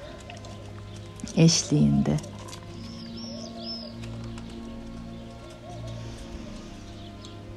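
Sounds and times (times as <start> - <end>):
birds chirping outdoors: 0.0 - 7.5
speech: 1.2 - 2.3.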